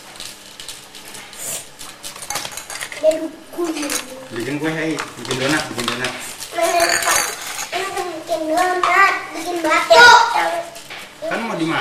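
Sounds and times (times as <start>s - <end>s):
plates and cutlery clinking, tapping and scraping: 2.0s - 8.0s
speech: 3.1s - 7.0s, 8.6s - 11.8s.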